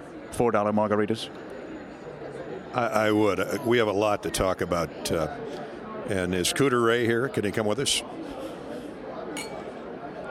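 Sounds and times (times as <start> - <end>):
crowd chatter: 0.0 - 10.2
speech: 0.4 - 1.5, 2.7 - 8.5
glasses clinking in a toast: 9.4 - 9.7.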